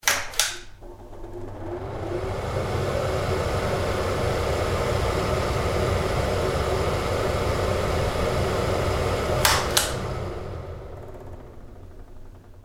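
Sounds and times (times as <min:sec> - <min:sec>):
pull cord switch click of electric extractor fan: 0:00.0 - 0:00.8, 0:09.4 - 0:10.1
household electric extractor fan running: 0:00.3 - 0:12.6.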